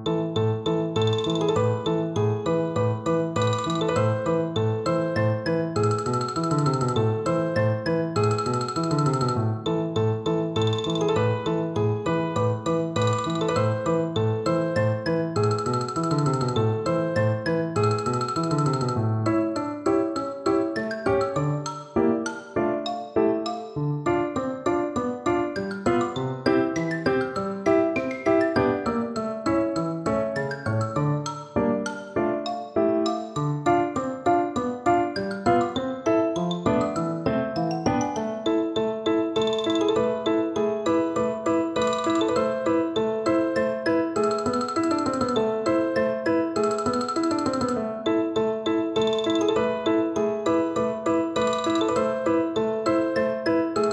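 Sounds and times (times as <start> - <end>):
xylophone melody: 0.1 - 48.0, 48.9 - 53.9.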